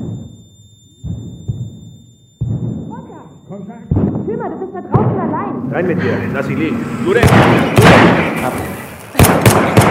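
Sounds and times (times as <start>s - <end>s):
speech: 3.7s - 8.8s
gunshots: 7.2s - 9.9s.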